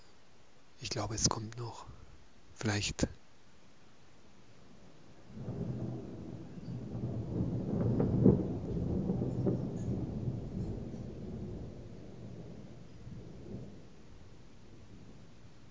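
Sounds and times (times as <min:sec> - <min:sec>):
faint patter of rain: 0:00.0 - 0:15.6
speech: 0:00.8 - 0:02.0, 0:02.6 - 0:03.2
long low rumble of thunder: 0:04.6 - 0:15.6.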